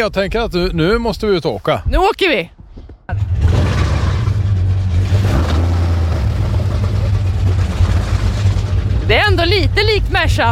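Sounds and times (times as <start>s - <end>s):
speech: 0.0s - 2.6s, 9.1s - 10.5s
motorboat engine running: 3.1s - 10.5s.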